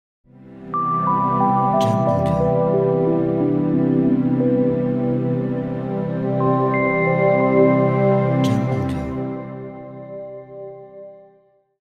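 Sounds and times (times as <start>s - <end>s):
ambient logo music: 0.3s - 11.3s.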